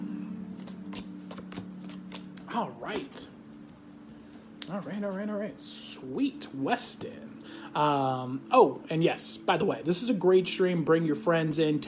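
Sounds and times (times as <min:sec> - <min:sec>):
steady low hum: 0:00.0 - 0:11.8
deck of playing cards being shuffled: 0:00.3 - 0:05.0
speech: 0:02.5 - 0:03.4, 0:04.7 - 0:11.8.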